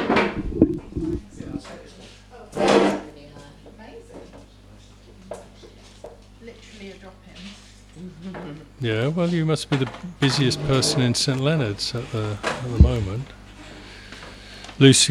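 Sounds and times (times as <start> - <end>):
chair being pulled up and shifted into place: 0.0 - 1.6, 10.3 - 11.1
murmuring voices: 0.0 - 1.7, 10.1 - 13.4
speech: 8.1 - 13.4, 14.8 - 15.0.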